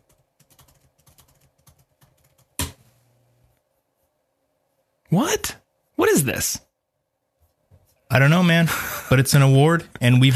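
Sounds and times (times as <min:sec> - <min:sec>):
typing on a computer keyboard: 0:00.0 - 0:02.8
speech: 0:05.1 - 0:05.6, 0:06.2 - 0:06.6, 0:08.2 - 0:10.3.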